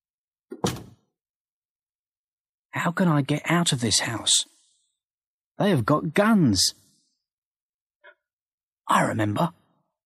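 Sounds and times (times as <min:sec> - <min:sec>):
door closing in a house: 0:00.5 - 0:01.1
speech: 0:02.8 - 0:04.6, 0:05.6 - 0:06.8, 0:08.9 - 0:09.6.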